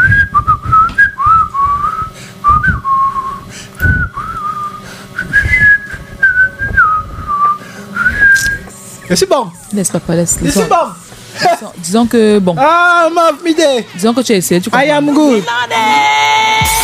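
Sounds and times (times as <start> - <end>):
person whistling a tune: 0.0 - 8.6
speech: 9.1 - 16.8.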